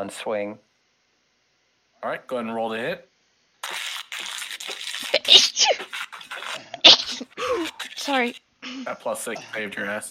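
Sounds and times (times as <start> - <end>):
speech: 0.0 - 0.7, 2.0 - 3.1, 7.6 - 10.0
faint hiss: 0.0 - 10.0
person sneezing: 5.0 - 8.9.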